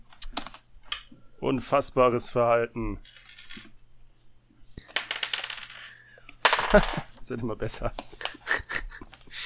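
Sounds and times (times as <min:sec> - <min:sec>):
speech: 0:01.4 - 0:03.2, 0:06.7 - 0:08.2
dice clattering on a hard tabletop: 0:03.0 - 0:03.8, 0:04.8 - 0:07.2
laughter: 0:07.7 - 0:09.2.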